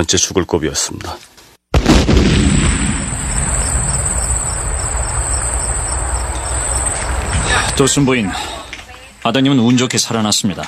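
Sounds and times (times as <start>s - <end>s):
speech: 0.0s - 2.5s, 7.8s - 8.6s, 9.2s - 10.6s
liquor bottle bursting when struck with a garden rake: 1.8s - 8.9s
rumbling hiss: 1.8s - 9.4s
steady high-pitched ringing: 3.0s - 8.6s.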